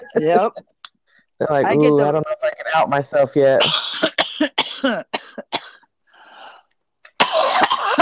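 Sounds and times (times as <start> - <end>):
speech: 0.0 - 0.8, 1.4 - 5.6
person coughing harshly after smoking cannabis: 3.6 - 5.8, 7.2 - 8.0.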